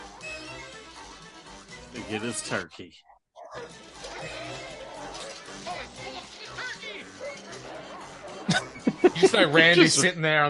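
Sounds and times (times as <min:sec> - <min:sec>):
speech: 0:02.0 - 0:04.7, 0:09.2 - 0:10.4
dogs barking excitedly inside a house: 0:03.4 - 0:08.8
laughter: 0:07.8 - 0:10.1.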